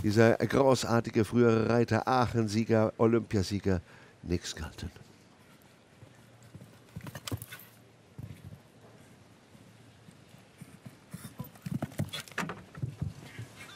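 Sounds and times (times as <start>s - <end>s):
speech: 0.0s - 5.0s
horse hooves thudding on a show-jumping course: 6.0s - 9.0s, 10.0s - 13.7s.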